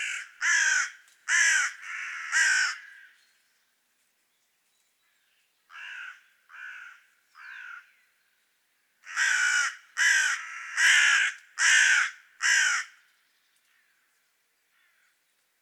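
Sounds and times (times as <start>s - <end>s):
carrion crow Corvus corone cawing: 0.0s - 3.2s, 5.7s - 7.9s, 9.0s - 13.0s.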